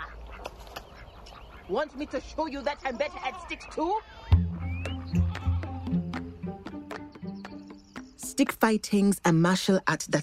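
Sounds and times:
speech: 0:01.7 - 0:04.4, 0:08.4 - 0:10.2
small herd of goats bleating: 0:05.1 - 0:06.0.

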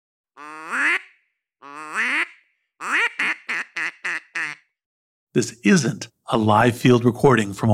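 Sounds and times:
duck call instrument blown mimicking quacking: 0:00.4 - 0:04.7
speech: 0:05.4 - 0:07.7.

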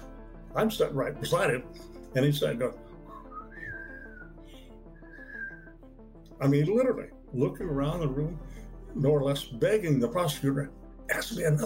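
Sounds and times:
speech: 0:00.5 - 0:02.9, 0:06.4 - 0:11.6
person whistling a slow wavering tune: 0:03.1 - 0:05.7.

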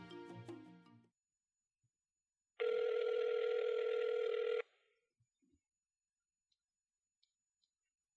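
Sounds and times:
phone dialing tones: 0:02.6 - 0:04.6.

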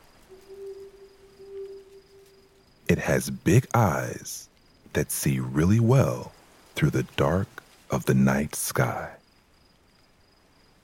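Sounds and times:
owl hooting at night in a tall tree near a campsite: 0:00.0 - 0:04.0
soft hiss: 0:00.0 - 0:10.8
faint high insect-like trill: 0:00.3 - 0:02.8
speech: 0:02.9 - 0:09.2.

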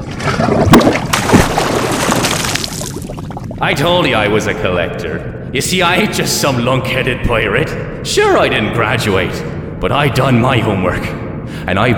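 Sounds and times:
deep splashy surges of a fountain altar and a body sinking: 0:00.0 - 0:03.6
heavy water sloshing and churning: 0:00.0 - 0:03.6
speech: 0:03.6 - 0:11.9.

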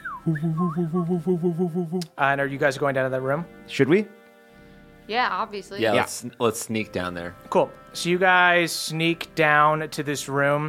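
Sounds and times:
voice imitating an amulet whistling on its chain: 0:00.0 - 0:02.2
speech: 0:00.2 - 0:04.2, 0:05.1 - 0:10.6.

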